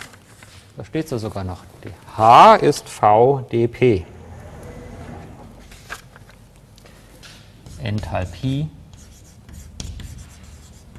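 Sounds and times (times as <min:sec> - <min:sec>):
speech: 0:00.8 - 0:04.1, 0:08.1 - 0:08.8
handwriting an equation: 0:09.0 - 0:10.9.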